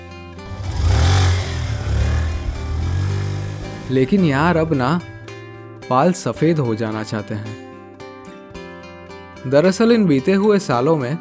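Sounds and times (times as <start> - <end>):
motorcycle engine revving: 0.4 - 5.2
speech: 3.9 - 5.1, 5.9 - 7.7, 9.4 - 11.1.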